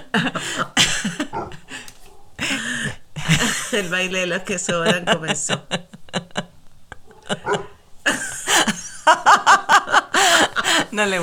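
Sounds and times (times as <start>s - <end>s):
laughter: 0.0s - 11.2s
speech: 0.1s - 0.7s, 3.8s - 5.8s, 11.0s - 11.2s
shepherd dog barking: 1.3s - 2.4s, 7.0s - 7.8s.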